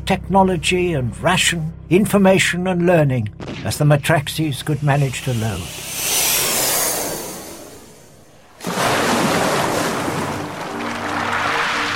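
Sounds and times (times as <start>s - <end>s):
speech: 0.1s - 6.1s
ocean waves breaking on a coast: 5.2s - 11.9s
steady roar of churning water: 7.2s - 11.9s.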